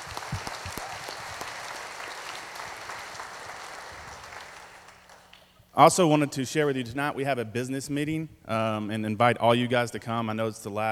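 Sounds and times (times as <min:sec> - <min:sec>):
audience applause: 0:00.0 - 0:05.4
speech: 0:05.8 - 0:10.9.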